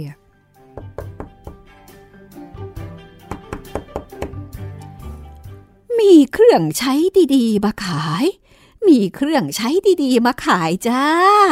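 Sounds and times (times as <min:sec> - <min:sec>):
speech: 0:00.0 - 0:00.2, 0:06.0 - 0:11.5
old woman knocking on the wooden door of a house: 0:00.8 - 0:01.7, 0:03.2 - 0:04.5.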